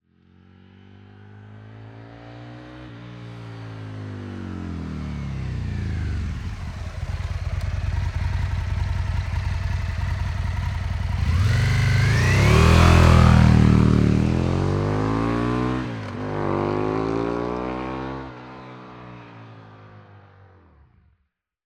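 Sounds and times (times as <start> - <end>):
V-twin 997cc motorcycle approaching fast, decelerating, stopping, idling and driving away: 3.2 - 20.1.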